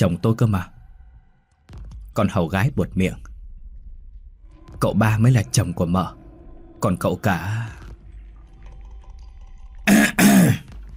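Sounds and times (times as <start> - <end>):
speech: 0.0 - 0.8, 2.2 - 3.3, 4.8 - 6.2, 6.8 - 7.8
boy clearing throat as a warning: 9.9 - 10.6.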